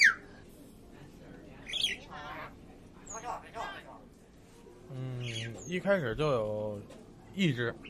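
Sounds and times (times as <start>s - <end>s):
birds chirping in a neighbourhood of alleys and low houses on a sunny day: 1.6s - 3.8s, 4.9s - 6.2s, 7.4s - 7.8s.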